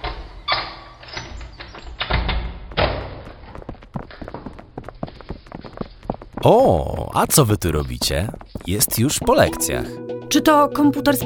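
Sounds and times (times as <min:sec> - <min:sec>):
hurried footsteps running across a hard floor: 0:01.7 - 0:09.9
speech: 0:06.4 - 0:11.2.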